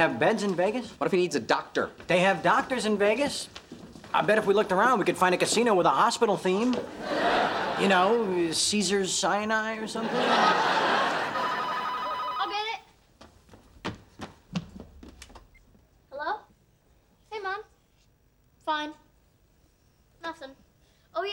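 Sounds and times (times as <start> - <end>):
speech: 0.0 - 11.3
laughter: 6.8 - 8.6, 9.8 - 12.2
telephone ringing loudly: 10.9 - 12.8.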